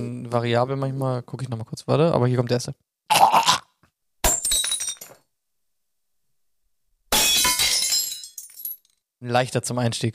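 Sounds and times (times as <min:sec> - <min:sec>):
speech: 0:00.0 - 0:03.5, 0:09.2 - 0:10.1
glass bottles breaking: 0:04.2 - 0:05.2, 0:07.1 - 0:09.0.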